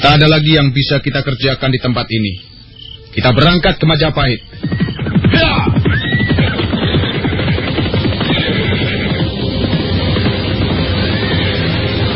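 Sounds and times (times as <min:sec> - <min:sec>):
speech: 0:00.0 - 0:02.5, 0:03.1 - 0:05.8
several riding horses' hooves clattering: 0:04.4 - 0:12.0
horse whinnying loudly: 0:04.6 - 0:09.4, 0:11.0 - 0:11.8.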